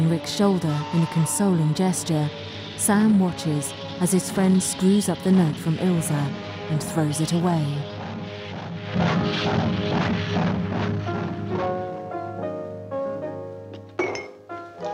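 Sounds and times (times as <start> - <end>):
speech: 0.0 - 8.0, 9.3 - 10.6
soft sustained music: 0.0 - 14.9
drinking glass knocked over on a table: 14.0 - 14.4.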